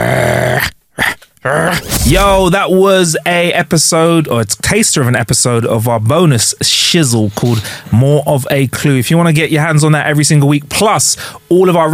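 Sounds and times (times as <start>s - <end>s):
person imitating a dog's growl: 0.0s - 2.4s
speech: 2.1s - 11.9s.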